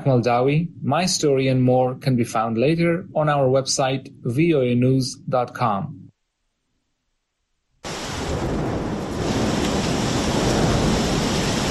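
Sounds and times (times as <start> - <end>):
low storm rumble: 0.0 - 6.0, 7.9 - 11.6
speech: 0.0 - 6.0
torrential rain during a storm: 7.8 - 11.6.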